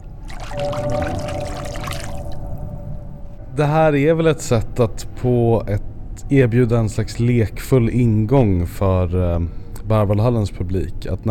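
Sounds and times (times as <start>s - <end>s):
hand swishing through water in a basin: 0.0s - 2.5s
water lapping in a basin: 0.0s - 2.8s
speech: 0.6s - 1.5s, 3.6s - 11.2s.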